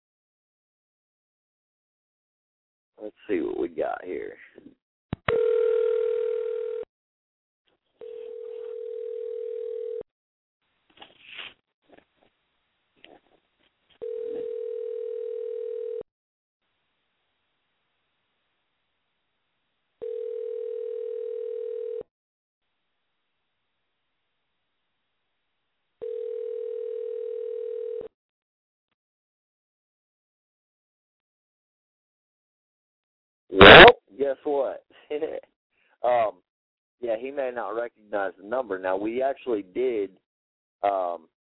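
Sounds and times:
speech: 3.0s - 5.7s, 34.3s - 36.4s, 37.1s - 40.2s, 40.8s - 41.3s
telephone dial tone on a landline while dialing out: 5.2s - 6.8s, 8.0s - 10.0s, 14.0s - 16.0s, 20.0s - 22.0s, 26.0s - 28.1s.

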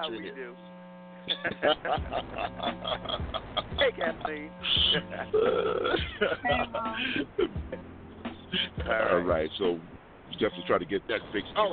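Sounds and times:
voice on a phone line: 0.0s - 0.6s, 1.3s - 7.4s, 8.5s - 11.7s
speech: 0.0s - 7.9s, 8.5s - 11.7s
electrical hum on a phone line: 0.0s - 11.7s
laughter: 1.3s - 7.9s, 8.5s - 9.3s.

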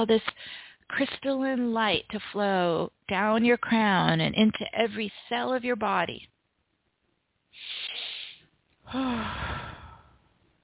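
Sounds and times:
speech: 0.0s - 6.3s, 8.9s - 9.7s
deep breathing: 7.6s - 10.4s
faint voiced sigh: 8.9s - 10.2s.

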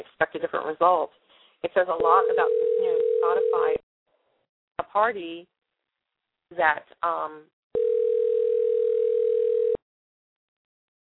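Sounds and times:
speech: 0.4s - 3.8s, 4.8s - 5.5s, 6.5s - 7.8s
telephone ringing as one steady electronic tone: 2.1s - 3.8s, 7.8s - 9.8s.

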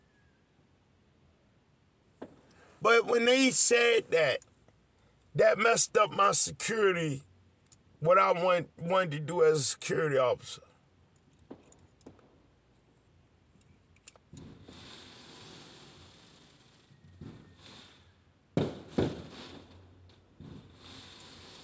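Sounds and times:
speech: 2.8s - 4.5s, 5.4s - 7.3s, 8.0s - 10.7s
fireworks going off in the neighborhood: 11.4s - 12.5s, 14.3s - 18.0s, 18.6s - 21.6s.

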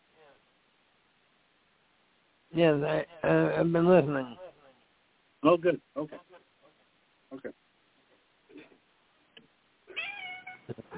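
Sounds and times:
speech: 2.5s - 4.4s, 5.4s - 6.4s, 7.3s - 7.6s
pet cat meowing over a phone line: 9.9s - 10.9s.

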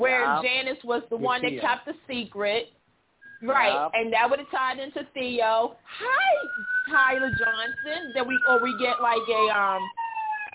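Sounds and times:
speech: 0.3s - 2.8s, 3.4s - 10.0s
siren wailing with a high electronic tone: 3.2s - 4.7s, 5.9s - 10.5s.

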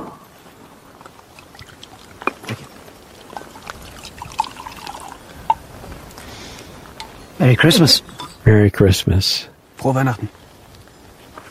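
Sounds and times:
glasses clinking: 1.0s - 5.6s, 6.8s - 8.6s
champagne being poured into glasses: 1.1s - 5.6s
speech: 7.4s - 10.4s.

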